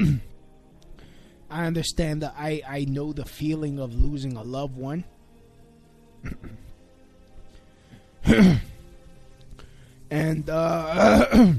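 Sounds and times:
person with phlegm clearing their throat: 0.0 - 0.3, 6.2 - 6.7, 8.2 - 8.7, 10.9 - 11.5
speech: 1.5 - 5.1, 6.2 - 6.7, 8.2 - 8.7, 10.1 - 11.5.

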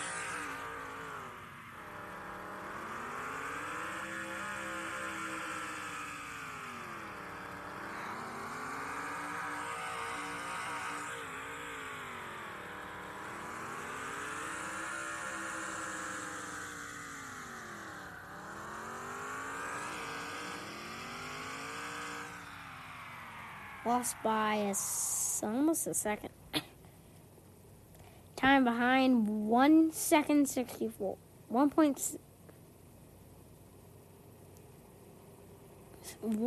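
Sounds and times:
race car engine revving in an augmented-reality racing video game: 0.0 - 25.6
speech: 23.9 - 26.3, 28.6 - 32.2, 36.2 - 36.4.

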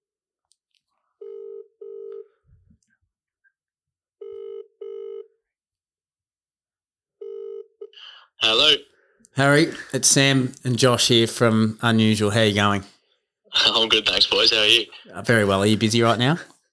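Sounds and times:
ringback tone of an outgoing telephone call: 4.2 - 5.3
speech: 8.4 - 12.9, 13.6 - 16.5.

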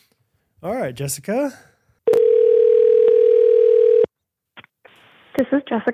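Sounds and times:
speech: 0.6 - 1.7, 5.4 - 5.9
electronic phone ringing tone: 2.1 - 4.1.

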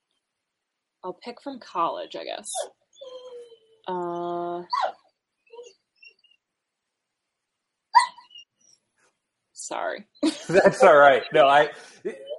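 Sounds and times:
speech: 1.0 - 2.8, 3.9 - 5.0, 9.7 - 12.3
dog whining for attention: 2.5 - 3.9, 4.7 - 6.4, 8.0 - 8.7, 12.2 - 12.3
laughter: 10.2 - 12.3.

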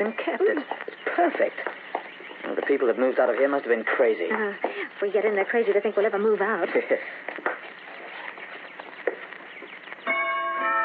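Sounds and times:
speech: 0.0 - 1.8, 2.4 - 7.3
scratchy noise: 0.0 - 10.8
chime ringing: 10.0 - 10.8.

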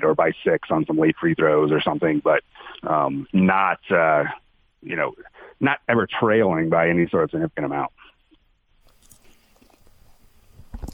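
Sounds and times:
speech: 0.1 - 8.0
wet chewing and biting of food: 8.9 - 10.1, 10.7 - 10.9.

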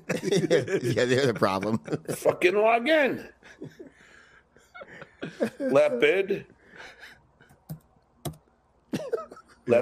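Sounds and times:
laughter: 0.0 - 2.6, 3.2 - 7.2, 8.9 - 9.7
speech: 0.1 - 3.9, 5.2 - 7.0, 8.9 - 9.7
typing on a computer keyboard: 7.5 - 8.4.

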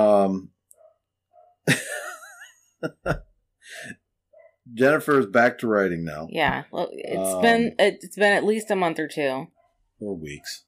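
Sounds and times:
speech: 0.3 - 0.6, 2.8 - 4.0, 4.7 - 10.6
dogs barking upstairs: 0.7 - 1.8, 4.3 - 4.8
laughter: 1.7 - 3.2.

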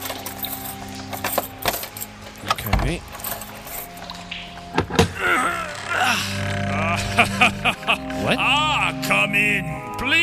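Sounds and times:
keys jangling: 0.0 - 4.2
speech: 2.9 - 3.2, 7.2 - 8.4
laughter: 5.2 - 9.3.

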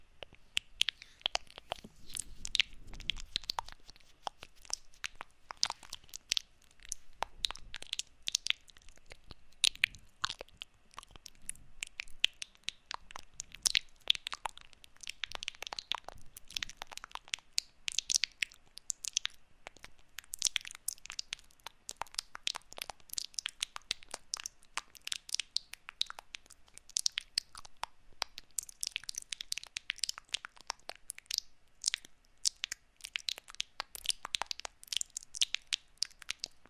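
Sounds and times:
faint low rumble: 0.0 - 19.0
wet mouth sounds: 0.1 - 36.6.

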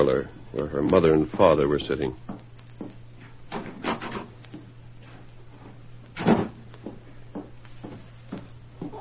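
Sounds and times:
speech: 0.0 - 2.4
door shutting with a muffled soft thump: 6.2 - 6.6.

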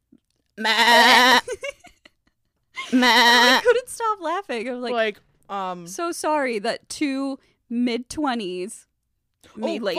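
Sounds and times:
sheep bleating: 0.6 - 1.4, 2.9 - 3.6
speech: 0.6 - 1.8, 2.9 - 9.9.

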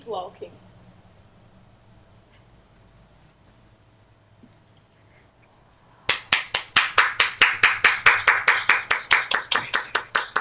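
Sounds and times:
steady brisk hand clapping: 6.1 - 10.3.

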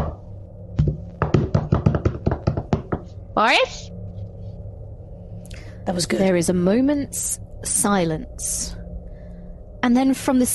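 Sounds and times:
sharp knocks on a hard surface: 0.8 - 3.1
speech: 3.4 - 3.9, 5.8 - 8.8, 9.8 - 10.5.

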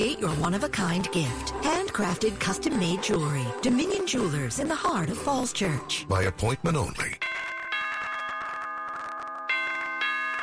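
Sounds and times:
speech: 0.0 - 7.2
doorbell chime ringing: 7.2 - 10.4.

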